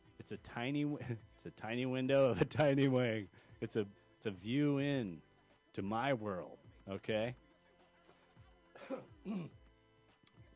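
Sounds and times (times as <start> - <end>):
speech: 0.2 - 7.4, 8.8 - 9.6
rough harsh throaty stoner coughs: 8.8 - 9.6.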